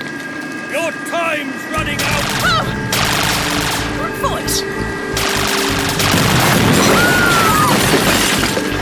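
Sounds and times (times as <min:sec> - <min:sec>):
speech: 0:00.9 - 0:02.9
heavy gunfire barrage of overlapping shots: 0:01.8 - 0:04.3, 0:05.2 - 0:08.7.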